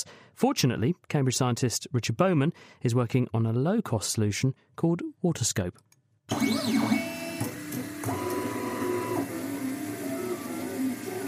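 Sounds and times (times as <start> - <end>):
speech: 0.0 - 7.1
3D printer printing handheld plastic microscopes: 6.3 - 11.2
3D printer stepper motors whining in shifting tones: 6.3 - 11.2.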